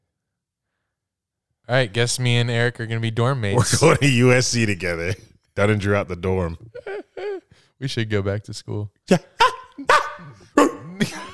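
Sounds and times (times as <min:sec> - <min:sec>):
speech: 0:01.7 - 0:07.0, 0:07.8 - 0:10.0, 0:11.0 - 0:11.3
dog barking: 0:09.4 - 0:10.9.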